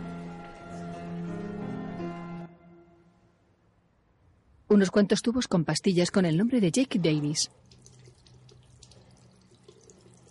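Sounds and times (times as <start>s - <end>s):
speech: 4.7s - 7.7s
water dripping: 6.7s - 10.3s
tap water running into a bathroom sink as a man washes his hands: 7.5s - 10.3s.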